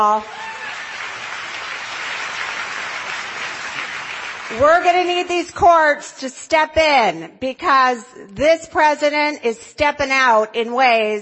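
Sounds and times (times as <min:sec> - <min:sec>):
speech: 0:00.0 - 0:00.5, 0:04.5 - 0:11.2
audience applause at a speech: 0:00.0 - 0:05.1.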